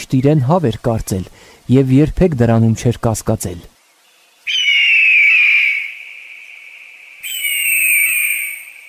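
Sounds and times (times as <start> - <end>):
speech: 0.1 - 3.7
eagle cry echoing off rock walls of a gorge: 4.5 - 6.2, 7.2 - 8.8.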